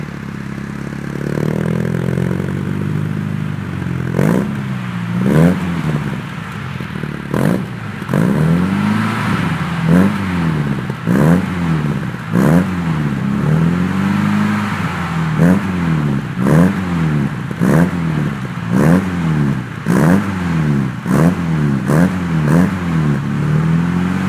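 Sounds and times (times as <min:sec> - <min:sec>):
BMW 2000 CS exhaust: 0:00.0 - 0:24.2.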